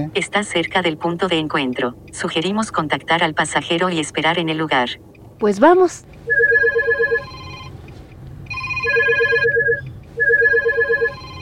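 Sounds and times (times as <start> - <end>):
speech: 0.0 - 6.6
low hum: 0.0 - 11.4
phone ringtone for an incoming call: 6.2 - 7.8, 8.5 - 11.4.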